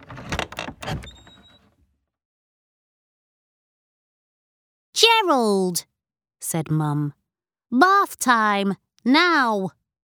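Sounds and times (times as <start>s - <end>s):
bedroom door rattling clunky knocks: 0.0s - 1.3s
bedroom door thin high-pitched creak: 0.0s - 1.8s
speech: 5.2s - 9.8s.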